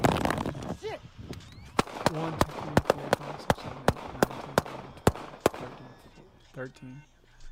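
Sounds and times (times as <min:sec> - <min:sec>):
gunshots: 0:00.0 - 0:00.6, 0:01.7 - 0:06.5
speech: 0:02.1 - 0:02.5, 0:06.6 - 0:07.2.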